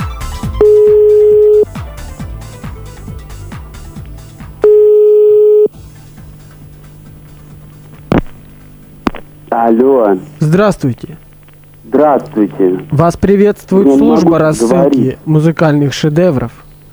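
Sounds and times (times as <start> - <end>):
telephone tones during a redial: 0.5 - 1.8, 4.6 - 5.8
speech: 9.6 - 11.3, 11.9 - 16.6.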